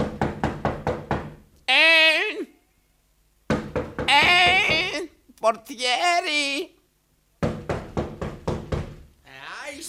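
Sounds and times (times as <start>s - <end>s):
knocking on a door: 0.0s - 1.4s, 3.5s - 5.0s, 7.4s - 9.1s
loud wavering vocal cries with a bleating quality: 4.1s - 5.1s
speech: 5.4s - 6.8s.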